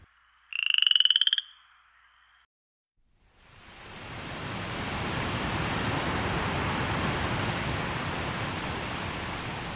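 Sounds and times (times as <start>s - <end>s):
frog croaking in a rapid rattling burst: 0.4s - 2.4s
steady broad hiss of sea surf: 3.3s - 9.7s.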